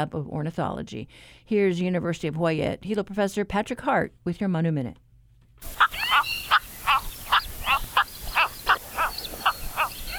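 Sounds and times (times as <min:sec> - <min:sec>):
speech: 0:00.0 - 0:05.0, 0:05.6 - 0:05.9
cattle egrets harsh throaty croaks: 0:05.6 - 0:10.1.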